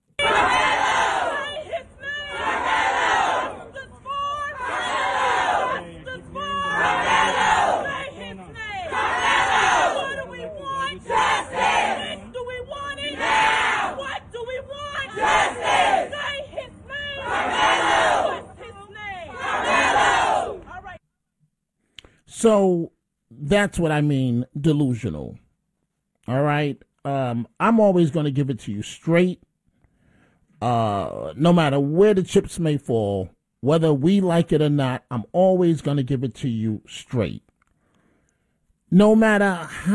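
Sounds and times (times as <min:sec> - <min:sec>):
large crowd of supporters chanting in unison outside a courthouse: 0:00.2 - 0:03.8, 0:04.4 - 0:14.2, 0:15.0 - 0:20.7
speech: 0:22.5 - 0:22.9, 0:23.5 - 0:25.4, 0:26.3 - 0:29.5, 0:30.6 - 0:37.5, 0:38.9 - 0:39.9.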